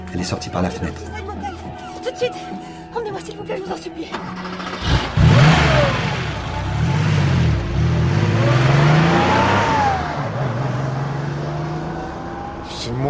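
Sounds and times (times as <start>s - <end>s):
speech: 0.1s - 1.2s, 2.1s - 6.0s
car engine revving: 4.1s - 13.0s.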